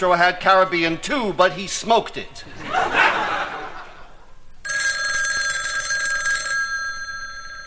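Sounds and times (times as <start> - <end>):
speech: 0.0 - 3.0
laughter: 2.4 - 4.4
telephone bell ringing on a phone on an island in the West Indies: 4.6 - 7.6.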